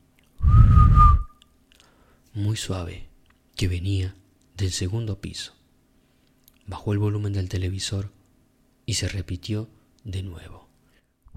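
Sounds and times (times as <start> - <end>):
low breathy rumble: 0.4 - 1.2
soft whistle: 0.4 - 1.5
speech: 2.4 - 5.6, 6.7 - 8.2, 8.9 - 10.7.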